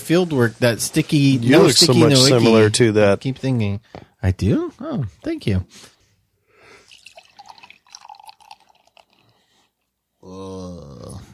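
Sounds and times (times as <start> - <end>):
speech: 0.1 - 5.9
beer pouring from a can into a glass: 6.8 - 9.6.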